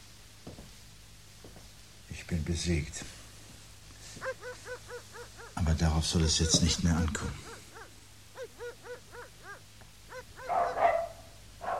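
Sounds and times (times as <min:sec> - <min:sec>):
speech: 0:02.2 - 0:03.1, 0:05.6 - 0:07.6
dogs barking: 0:04.1 - 0:11.7.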